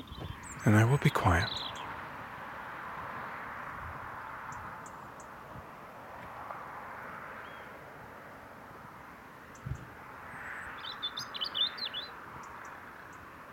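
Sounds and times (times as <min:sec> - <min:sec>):
robin singing: 0:00.0 - 0:02.1, 0:09.5 - 0:13.3
speech: 0:00.6 - 0:01.6.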